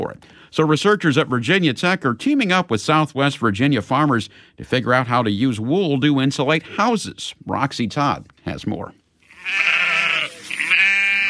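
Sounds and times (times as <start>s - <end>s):
speech: 0.0s - 9.9s
sheep bleating on a southwest Virginia farm: 9.2s - 11.2s.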